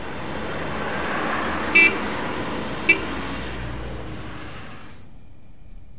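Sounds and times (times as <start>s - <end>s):
steady rumble of road traffic: 0.0s - 5.9s
car horn honking: 1.7s - 2.2s, 2.8s - 3.3s.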